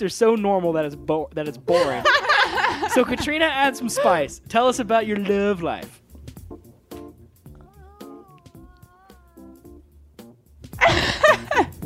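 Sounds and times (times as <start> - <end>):
speech: 0.0 - 6.0
laughter: 1.7 - 4.2, 10.8 - 11.7
cat meowing: 7.5 - 9.8.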